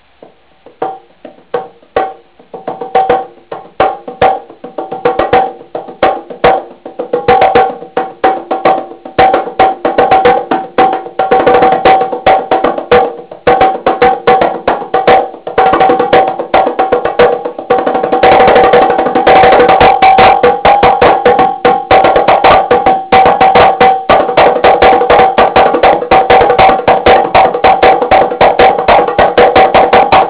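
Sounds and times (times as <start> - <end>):
darbuka drumming: 0.0 - 30.2.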